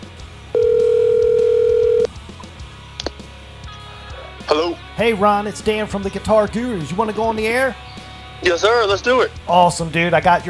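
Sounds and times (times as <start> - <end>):
electronic ringback tone over a phone line: 0.6 - 2.1
faint phone line noise: 0.6 - 2.1
speech: 4.6 - 10.4.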